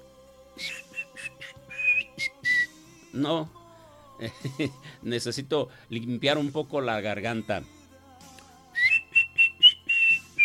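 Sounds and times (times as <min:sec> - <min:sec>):
person whistling in short breathy puffs: 0:00.6 - 0:02.8, 0:08.8 - 0:10.4
speech: 0:03.2 - 0:03.6, 0:04.2 - 0:07.8.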